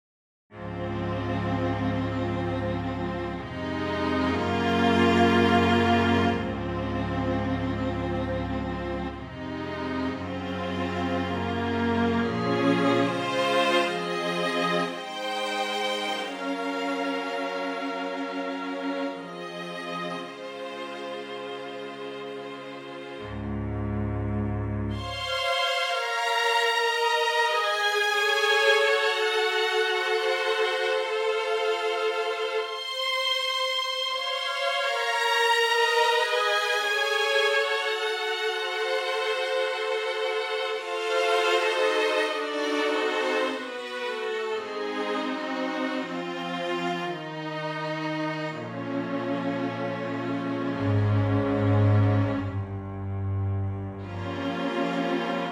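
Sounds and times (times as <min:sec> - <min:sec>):
vintage strings: 0:00.5 - 0:55.5.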